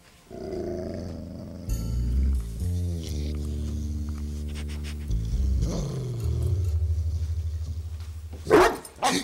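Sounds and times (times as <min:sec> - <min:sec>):
dog snarling and growling: 0:00.3 - 0:07.6
dog barking: 0:08.5 - 0:09.2.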